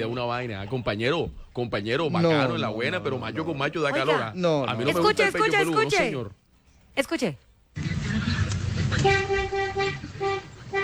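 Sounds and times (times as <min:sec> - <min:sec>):
speech: 0:00.0 - 0:06.4, 0:07.0 - 0:08.3
deep truck horn of a double-axle truck honking: 0:09.0 - 0:10.8.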